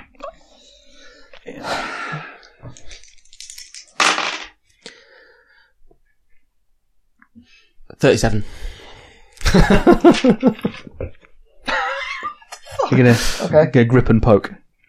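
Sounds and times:
dice rattling and clattering onto a hard surface: 0:02.7 - 0:04.6
speech: 0:08.0 - 0:08.6, 0:09.5 - 0:11.2, 0:12.9 - 0:14.6
laughter: 0:09.4 - 0:13.0.

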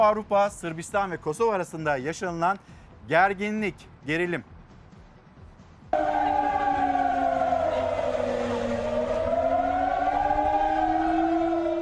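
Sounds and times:
speech: 0:00.0 - 0:04.5
loud siren wailing: 0:06.0 - 0:11.8.

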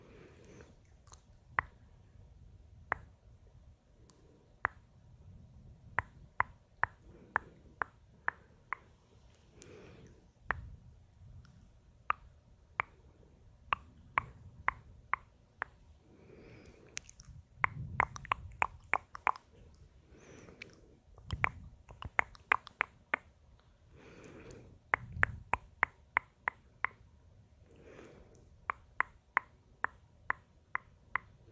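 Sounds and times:
sharp bright tongue clicks: 0:00.4 - 0:01.8, 0:02.9 - 0:03.1, 0:05.8 - 0:09.0, 0:11.4 - 0:13.0, 0:13.7 - 0:15.8, 0:16.6 - 0:27.1, 0:28.3 - 0:31.5.

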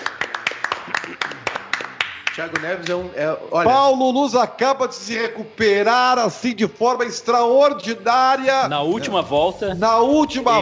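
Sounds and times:
small group hands clapping: 0:00.0 - 0:03.0
speech: 0:02.4 - 0:10.6.

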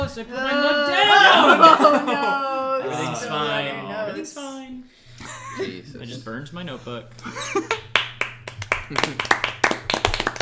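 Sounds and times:
speech: 0:00.1 - 0:07.9, 0:08.9 - 0:09.6
laughter: 0:00.9 - 0:03.8, 0:05.2 - 0:06.2, 0:07.2 - 0:08.0, 0:08.7 - 0:09.4
sharp hand claps: 0:07.2 - 0:10.4.

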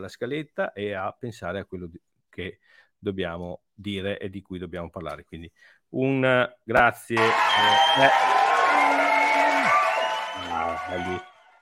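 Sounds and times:
speech: 0:00.0 - 0:08.5, 0:10.6 - 0:11.3
crowd applauding and cheering with whoops: 0:07.2 - 0:11.6.

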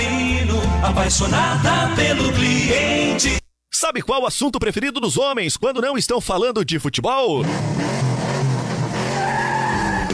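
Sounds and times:
speech: 0:00.8 - 0:08.1
car engine roaring: 0:07.4 - 0:10.1
car tires screeching in a skid: 0:07.4 - 0:10.1.

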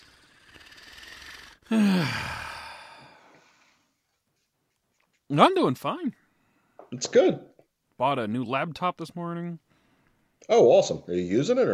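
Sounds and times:
person yawning with a low moan: 0:00.6 - 0:03.3
speech: 0:01.7 - 0:02.4, 0:05.3 - 0:06.2, 0:06.9 - 0:09.6, 0:10.4 - 0:11.7.

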